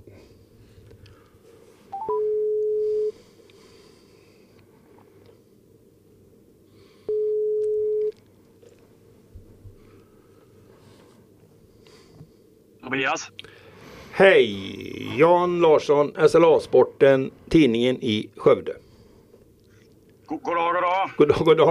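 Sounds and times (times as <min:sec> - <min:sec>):
faint noise: 0:00.0 - 0:21.6
telephone dialing beeps: 0:01.9 - 0:03.1
telephone ringing tone: 0:01.9 - 0:03.1, 0:07.1 - 0:08.1
speech: 0:12.9 - 0:13.5, 0:14.2 - 0:18.8, 0:20.5 - 0:21.6.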